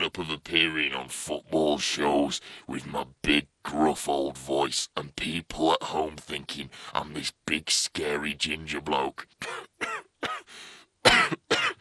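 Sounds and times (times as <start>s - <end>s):
speech: 0.1s - 10.7s
man coughing: 9.4s - 11.8s
man's rasping breath: 10.5s - 10.9s.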